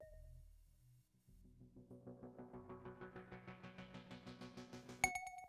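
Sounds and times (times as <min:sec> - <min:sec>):
synth chorus: 0:01.4 - 0:05.4.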